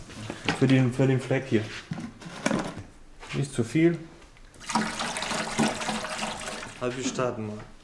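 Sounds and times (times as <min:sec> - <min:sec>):
speech: 0:00.6 - 0:01.9, 0:03.3 - 0:04.1, 0:06.8 - 0:07.8
carpet cleaner liquid pouring into a carpet cleaning machine: 0:04.6 - 0:06.9.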